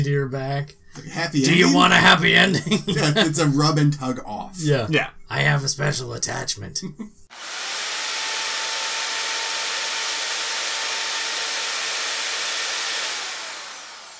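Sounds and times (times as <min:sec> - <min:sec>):
speech: 0:00.0 - 0:07.6
laughter: 0:01.0 - 0:07.3
vacuum cleaner running: 0:07.3 - 0:14.1.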